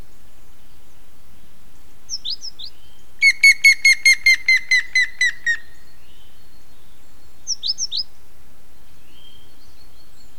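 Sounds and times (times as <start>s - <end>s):
Grey-headed woodpecker giving pure whistled notes: 3.2s - 5.6s.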